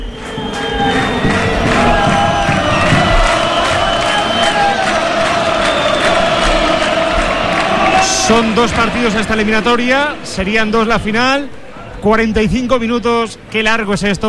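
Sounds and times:
football fans shouting in a stadium: 0.0s - 11.9s
football stadium crowd roaring at half-time in Castellón: 0.0s - 13.5s
speech: 8.3s - 14.2s.

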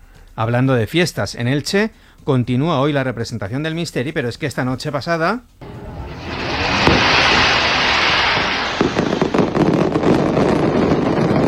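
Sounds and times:
speech: 0.4s - 5.8s
fireworks display crackling and hissing: 5.6s - 11.4s.

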